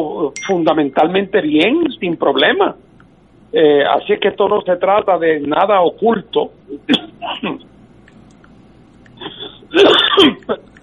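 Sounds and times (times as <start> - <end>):
speech: 0.0 - 2.8, 3.5 - 7.7, 9.7 - 10.7
loud sneeze: 9.7 - 10.5.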